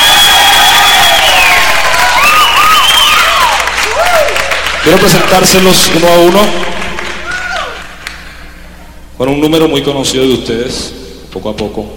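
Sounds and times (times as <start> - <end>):
audience whistles and shouts: 0.0 - 3.5
large audience applauding: 0.0 - 8.4
speech: 4.8 - 6.7, 9.2 - 11.9.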